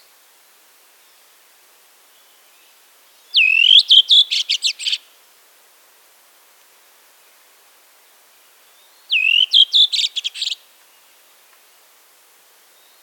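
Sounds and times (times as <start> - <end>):
redwing singing: 3.3 - 5.0, 9.1 - 10.6.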